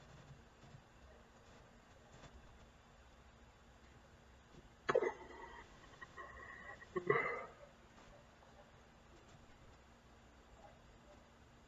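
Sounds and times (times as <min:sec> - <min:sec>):
hiccups: 0:04.9 - 0:07.6.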